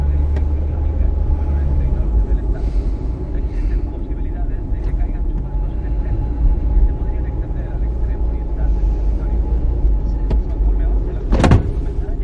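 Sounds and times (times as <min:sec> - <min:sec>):
car engine rumble: 0:00.0 - 0:12.2.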